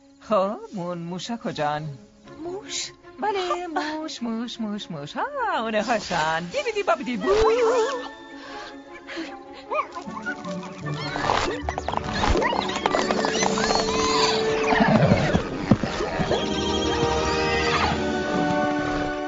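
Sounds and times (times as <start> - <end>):
speech: 0.3 - 8.2
four white draft horses whinnying: 7.2 - 19.2.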